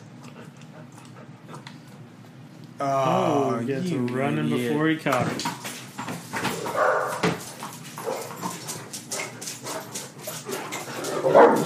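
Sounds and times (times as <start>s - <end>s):
speech: 2.8s - 5.6s
two large dogs barking indoors: 6.5s - 7.2s, 8.0s - 9.9s, 10.5s - 11.6s.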